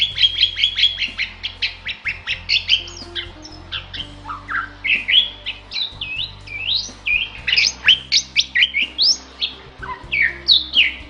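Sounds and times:
Bali myna singing vigorously with loud sliding whistles and chirps: 0:00.0 - 0:11.0.

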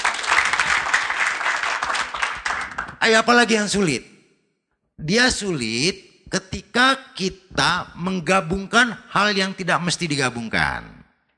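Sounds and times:
applause from an audience of mothers and fathers: 0:00.0 - 0:03.0
speech: 0:03.0 - 0:04.1, 0:05.0 - 0:11.0.

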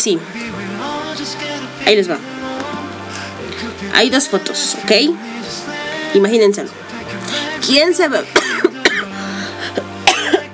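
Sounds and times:
speech: 0:00.0 - 0:00.5, 0:01.2 - 0:02.4, 0:03.8 - 0:08.6
dry coughing from a throat parched by fast talking: 0:08.3 - 0:10.5.

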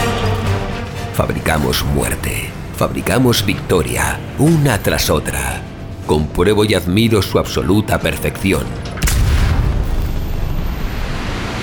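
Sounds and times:
speech: 0:01.2 - 0:08.9
violent distant explosion rumble: 0:09.0 - 0:11.6.

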